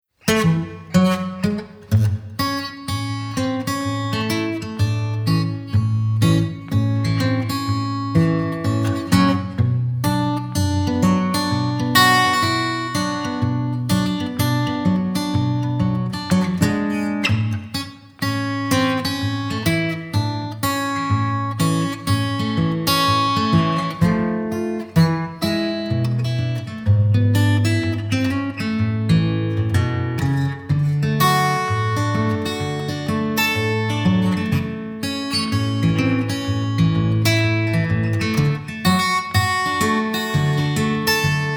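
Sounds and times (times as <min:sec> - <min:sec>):
guitar instrumental: 0:00.2 - 0:41.5.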